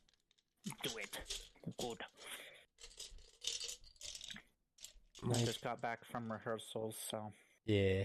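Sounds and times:
small hard dice rattling and clattering: 0.0 - 2.0, 2.8 - 5.6
speech: 0.8 - 2.5, 5.2 - 8.0.

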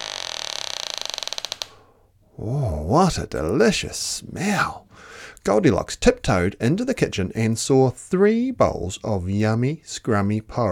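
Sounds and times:
door creaking open: 0.0 - 1.9
speech: 2.4 - 10.7.

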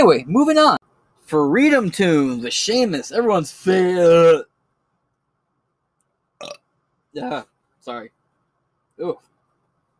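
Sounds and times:
speech: 0.0 - 4.5, 7.2 - 8.2, 9.0 - 9.3
low noise: 0.0 - 9.9
burp from drinking soda pop: 6.4 - 6.7.

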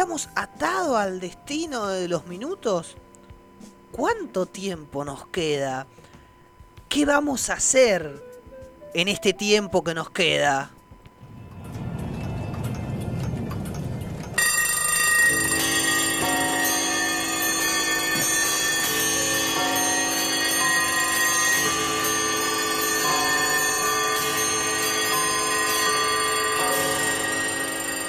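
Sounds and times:
speech: 0.1 - 6.1, 6.9 - 8.3, 8.9 - 10.8
rumble: 10.9 - 14.4
several bells ringing in an overlapping peal: 11.2 - 28.0.

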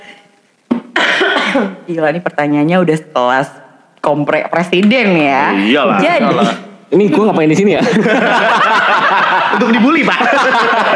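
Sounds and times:
person coughing: 1.0 - 1.8
speech: 1.6 - 10.9
laughter: 7.8 - 10.9.

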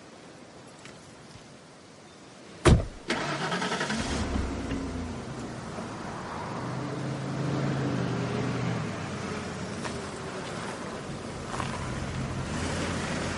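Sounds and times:
road and wind noise: 0.0 - 13.3
sharp thump: 2.6 - 3.0
car engine starting in a motel parking lot: 2.7 - 13.3.

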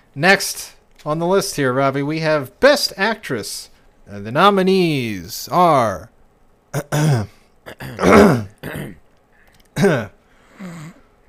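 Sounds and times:
speech: 0.2 - 9.0, 9.8 - 10.2
person clearing throat: 6.8 - 9.0, 9.8 - 11.1.

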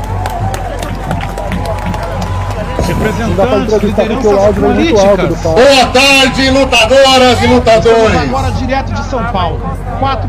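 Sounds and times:
crowd applauding with many hands clapping: 0.0 - 6.4
speech: 3.0 - 10.2.

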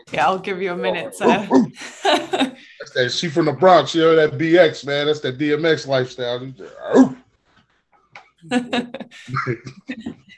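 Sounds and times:
speech: 0.0 - 7.2, 8.4 - 10.3
laughter: 0.7 - 6.7, 8.5 - 10.1
dog whimpering: 1.0 - 1.8.

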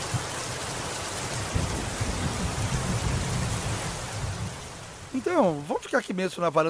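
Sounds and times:
heavy rain pouring onto the sea: 0.0 - 6.6
low rumble of thunder: 1.2 - 5.1
speech: 5.2 - 6.6.

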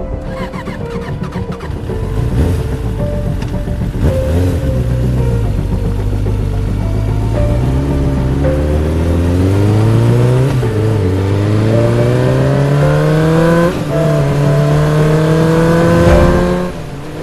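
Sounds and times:
motorcycle engine revving hard at high speed through the rain: 0.1 - 17.2.

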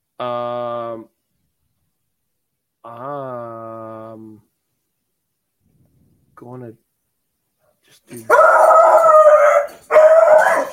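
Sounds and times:
speech: 0.2 - 1.2, 8.0 - 9.0
dog howling sound effect from soundboard button: 8.3 - 10.7.

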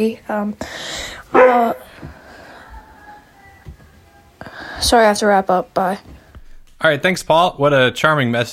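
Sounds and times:
speech: 0.0 - 2.2, 4.8 - 6.1, 6.8 - 8.5
dog giving a loud bark: 1.3 - 1.9.

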